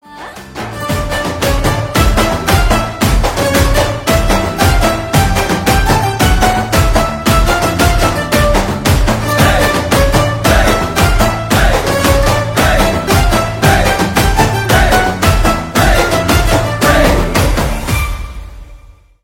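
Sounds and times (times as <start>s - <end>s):
drum beats background music ringtone: 0.1s - 18.5s.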